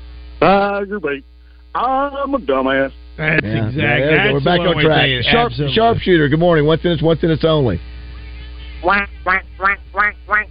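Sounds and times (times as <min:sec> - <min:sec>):
quiet hum: 0:00.0 - 0:10.4
speech: 0:00.4 - 0:07.9, 0:08.8 - 0:09.8
person imitating duck quacks: 0:08.8 - 0:10.4.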